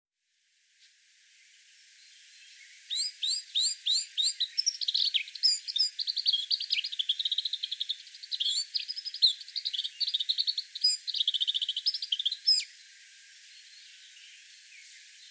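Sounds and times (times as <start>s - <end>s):
Eurasian blackcap Sylvia atricapilla singing: 2.9s - 12.7s.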